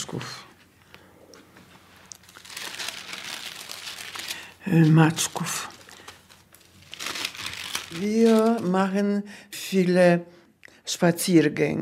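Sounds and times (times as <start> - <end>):
speech: 0.1 - 0.5, 4.6 - 5.7, 7.9 - 11.8
old photo album pages turning: 1.4 - 8.8.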